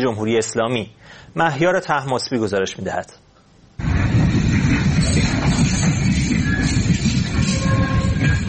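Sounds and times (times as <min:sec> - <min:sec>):
speech: 0:00.0 - 0:03.9
Turkish freight train rolling along the rails arriving in Xi'an China: 0:03.8 - 0:08.4
faint metallic squeals and tones from the freight train: 0:04.7 - 0:08.4.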